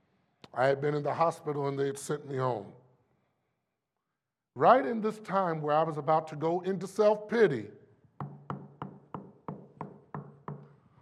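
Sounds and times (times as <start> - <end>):
speech: 0.6 - 2.8, 4.6 - 7.8
knocking at a door: 8.2 - 10.7.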